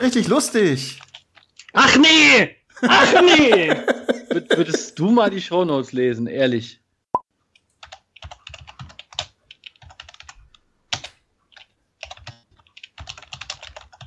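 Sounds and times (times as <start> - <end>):
speech: 0.0 - 1.1, 1.8 - 6.8
typing show notes on a computer keyboard: 1.0 - 1.7, 7.6 - 14.0
laughter: 2.8 - 5.0.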